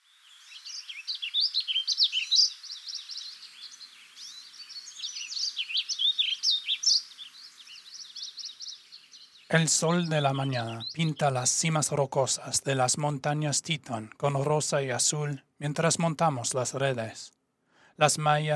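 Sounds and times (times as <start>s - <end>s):
Warbling Vireo singing in Montana, USA: 0.0s - 12.1s
speech: 9.5s - 17.4s, 18.0s - 18.5s.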